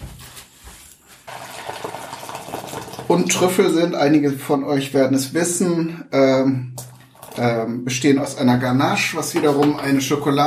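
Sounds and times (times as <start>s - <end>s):
boiling water pouring into a container: 1.3s - 3.8s, 6.8s - 7.7s
speech: 3.1s - 6.7s, 7.4s - 10.4s.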